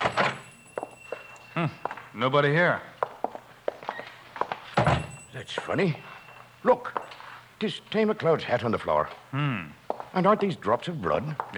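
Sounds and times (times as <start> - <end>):
speech: 1.6 - 2.9, 5.4 - 7.0, 7.6 - 11.5
door opening with a short scraping rattle: 4.7 - 5.2.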